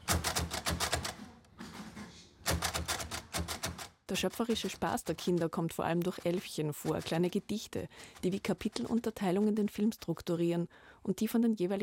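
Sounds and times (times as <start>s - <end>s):
Braille typewriter keys being typed: 0.0s - 1.2s, 2.4s - 9.4s
speech: 4.1s - 11.8s.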